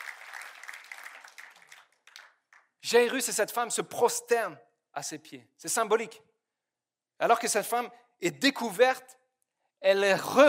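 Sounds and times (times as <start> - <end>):
crowd applauding: 0.0 - 2.7
speech: 2.9 - 6.3, 7.2 - 9.2, 9.8 - 10.4.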